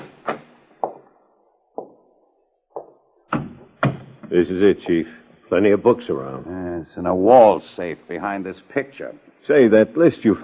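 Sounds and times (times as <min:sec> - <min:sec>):
library door being opened with wooden thunks and rattles: 0:03.3 - 0:04.3
speech: 0:04.3 - 0:10.4.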